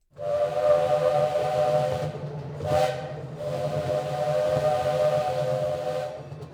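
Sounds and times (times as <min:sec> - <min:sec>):
steam train whistle: 0:00.1 - 0:06.5.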